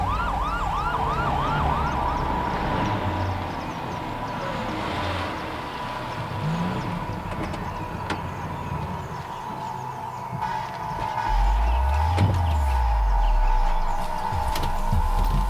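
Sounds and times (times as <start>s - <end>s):
ambulance siren wailing: 0.0s - 5.4s, 6.2s - 15.4s
road traffic rumble: 0.0s - 15.4s.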